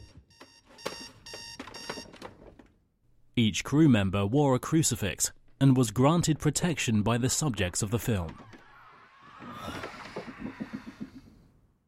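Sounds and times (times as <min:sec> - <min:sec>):
digital alarm clock beeping: 0:00.0 - 0:02.1
speech: 0:03.4 - 0:08.5.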